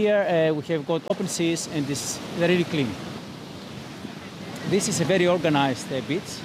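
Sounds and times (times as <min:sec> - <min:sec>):
speech: 0:00.0 - 0:03.2, 0:04.7 - 0:06.4
Aegean Sea waves on a groomed beach on the Pelion coast of Greece: 0:00.0 - 0:06.4.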